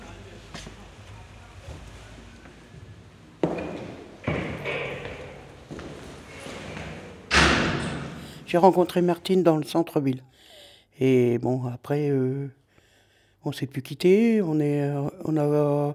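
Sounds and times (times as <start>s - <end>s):
low hum: 0.0s - 13.5s
door opening: 3.4s - 8.5s
speech: 8.5s - 12.6s, 13.4s - 15.9s.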